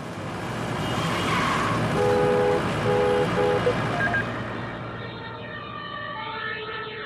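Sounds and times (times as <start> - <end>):
steady road traffic noise: 0.0 - 7.0
emergency vehicle siren wailing as the vehicle passes: 3.6 - 7.0.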